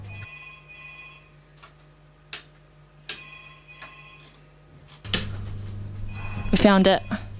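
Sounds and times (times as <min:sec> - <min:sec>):
faint telephone ringing with thin electronic tone: 0:00.0 - 0:01.4, 0:03.1 - 0:04.5, 0:06.0 - 0:07.3
speech: 0:06.5 - 0:07.2.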